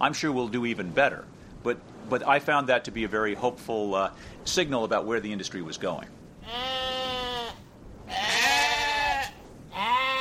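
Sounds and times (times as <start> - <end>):
speech: 0.0 - 6.7
sheep bleating on a farm beneath wind turbines: 6.4 - 10.2.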